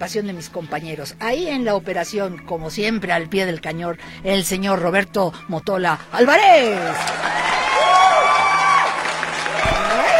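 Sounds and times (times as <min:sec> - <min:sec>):
speech: 0:00.0 - 0:07.6
crowd clapping: 0:06.0 - 0:10.1
crowd cheering with whoops and shouts: 0:06.8 - 0:10.1.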